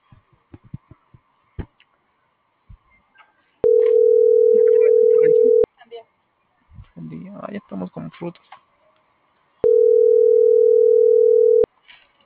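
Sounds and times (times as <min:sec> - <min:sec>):
phone ringback tone on an unanswered outgoing call: 0:03.6 - 0:05.7, 0:09.6 - 0:11.7
speech: 0:08.2 - 0:08.6.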